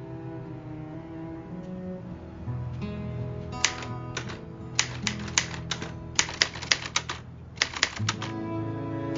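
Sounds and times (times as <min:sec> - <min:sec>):
steady low tonal background: 0:00.0 - 0:09.1
typing on a typewriter-style keyboard: 0:03.6 - 0:08.4.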